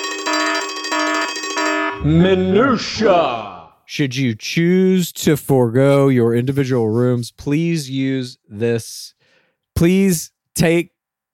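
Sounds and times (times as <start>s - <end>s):
electronic alarm blaring in rapid pulses: 0.0s - 2.1s
speech: 2.0s - 9.2s, 9.8s - 11.0s.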